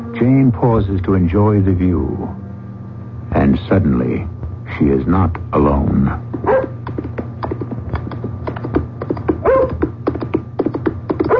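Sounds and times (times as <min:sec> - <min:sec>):
low steady rumble: 0:00.0 - 0:11.3
speech: 0:00.2 - 0:02.4, 0:03.4 - 0:06.7
horse galloping furiously with a rider on a hard-frozen moor road: 0:06.2 - 0:11.3
dog barking and yelping on a hard-frozen moor road: 0:06.4 - 0:06.8, 0:09.4 - 0:09.8.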